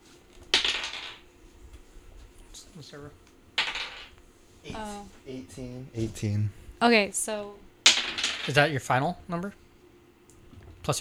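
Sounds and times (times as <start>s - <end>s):
twenty-sided die rolled: 0.5s - 1.2s, 3.6s - 4.9s, 7.9s - 8.8s
speech: 2.8s - 3.3s, 4.6s - 7.7s, 8.5s - 9.6s.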